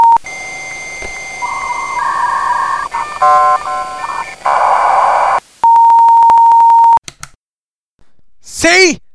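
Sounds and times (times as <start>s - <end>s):
answering machine beep: 0.0s - 7.0s
electronic telephone tones and chirps: 0.0s - 7.0s.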